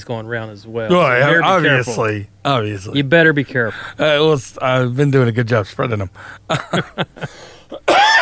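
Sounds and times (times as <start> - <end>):
speech: 0.0 - 7.9
laughter: 6.2 - 7.5
person coughing: 7.7 - 8.2.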